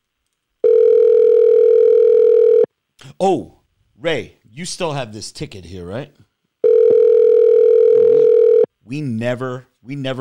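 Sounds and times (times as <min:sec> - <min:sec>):
electronic phone ring tone on a line: 0:00.6 - 0:02.7, 0:06.6 - 0:08.7
speech: 0:03.2 - 0:06.2, 0:08.9 - 0:10.1.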